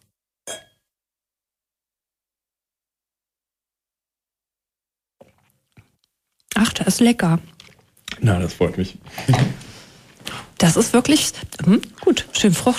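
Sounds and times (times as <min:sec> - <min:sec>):
wine glasses clinking together in a toast: 0:00.5 - 0:00.8
speech: 0:06.6 - 0:07.6, 0:08.2 - 0:09.6, 0:10.7 - 0:12.7.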